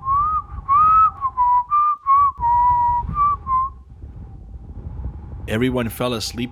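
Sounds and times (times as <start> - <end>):
person whistling a tarantella melody: 0.0 - 3.8
low rumble: 0.0 - 6.5
speech: 5.5 - 6.5.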